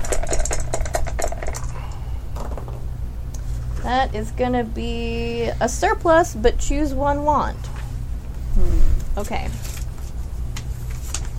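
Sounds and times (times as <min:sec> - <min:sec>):
dice rattling across a hard surface during a tabletop game: 0:00.0 - 0:01.7, 0:02.4 - 0:02.8
low steady hum: 0:00.0 - 0:11.3
speech: 0:03.9 - 0:07.7, 0:08.6 - 0:09.7.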